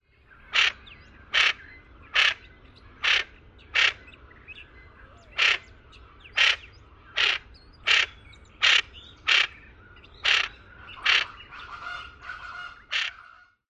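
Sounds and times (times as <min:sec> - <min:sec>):
alarm calls: 0:00.2 - 0:13.6.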